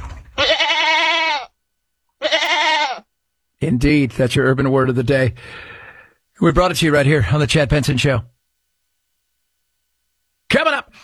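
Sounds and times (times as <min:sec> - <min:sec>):
goat bleating: 0:00.0 - 0:01.6, 0:02.2 - 0:03.1
speech: 0:03.6 - 0:05.8, 0:06.4 - 0:08.3, 0:10.5 - 0:10.8.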